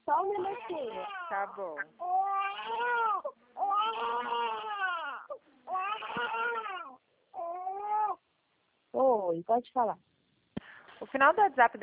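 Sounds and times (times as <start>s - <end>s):
baby crying: 0.2s - 8.2s
speech: 0.3s - 4.3s, 9.3s - 10.1s, 11.0s - 11.8s.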